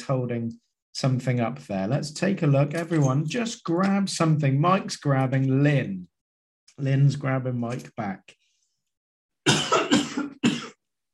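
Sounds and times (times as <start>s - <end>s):
speech: 0.1s - 6.1s, 6.8s - 8.4s
person coughing: 9.5s - 10.8s.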